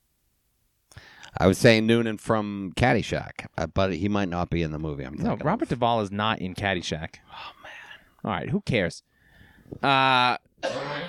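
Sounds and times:
speech: 0:01.4 - 0:09.1, 0:09.7 - 0:11.0
coughing: 0:09.8 - 0:11.0
throat clearing: 0:10.6 - 0:11.0.

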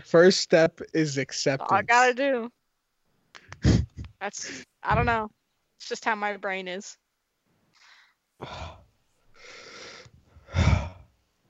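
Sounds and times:
speech: 0:00.0 - 0:02.6, 0:03.6 - 0:07.0, 0:08.4 - 0:08.8
heavy breathy exhalations into the microphone: 0:07.8 - 0:11.1.

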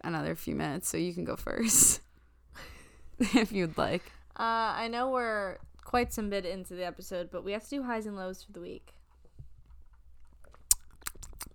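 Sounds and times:
speech: 0:00.1 - 0:02.0, 0:02.6 - 0:09.0
person sipping water: 0:10.2 - 0:11.5
swallowing: 0:10.2 - 0:11.5.

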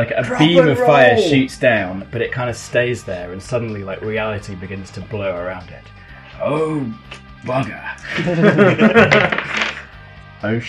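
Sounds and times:
voices murmuring: 0:00.0 - 0:01.6
speech: 0:00.0 - 0:09.6, 0:10.4 - 0:10.6
laughter: 0:00.3 - 0:01.4, 0:08.0 - 0:09.8
dice clattering across a table during a tabletop role-playing game: 0:09.1 - 0:09.8.

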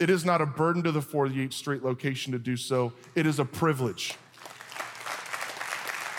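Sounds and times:
speech: 0:00.0 - 0:04.2
audience clapping: 0:04.0 - 0:06.1.

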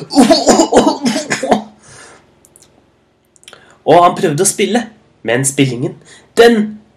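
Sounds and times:
speech: 0:00.0 - 0:00.7, 0:03.9 - 0:06.8
musician coughing harshly from a spider lodged low in his throat: 0:00.0 - 0:01.8.

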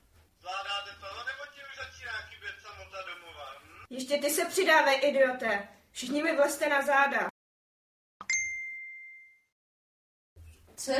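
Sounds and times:
speech: 0:04.0 - 0:07.3
message notification ding: 0:08.2 - 0:09.5.

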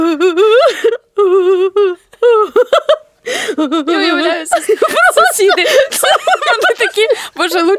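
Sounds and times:
woman's voice imitating wailing sobs: 0:00.0 - 0:04.4
laughter: 0:03.6 - 0:07.4.

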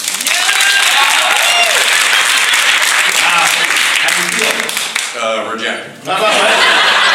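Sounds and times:
audience clapping: 0:00.0 - 0:05.2
laughter: 0:06.0 - 0:07.1.

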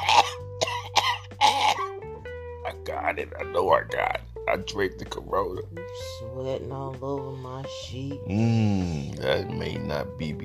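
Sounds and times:
harsh barking coughs: 0:00.0 - 0:01.9
speech: 0:03.1 - 0:10.4.

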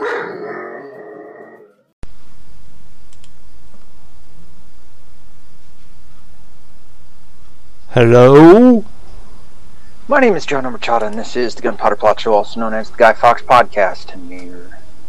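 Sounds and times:
dog barking and growling: 0:00.0 - 0:01.7
steady wash of noise: 0:00.0 - 0:15.0
speech: 0:07.9 - 0:08.9, 0:10.1 - 0:14.8.

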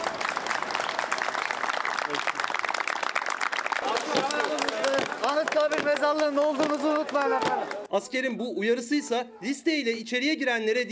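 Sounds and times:
crowd applause echoing in a courtyard: 0:00.0 - 0:07.9
speech: 0:05.4 - 0:10.9.

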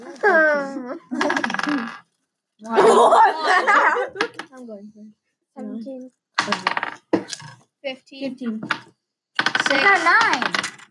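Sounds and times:
short drawn-out vocal sound: 0:00.0 - 0:01.9
laughter: 0:01.1 - 0:01.8, 0:02.7 - 0:04.4
speech: 0:02.7 - 0:09.0, 0:09.7 - 0:10.8
twenty-sided dice rolling on a table: 0:06.4 - 0:07.6, 0:08.6 - 0:10.8.

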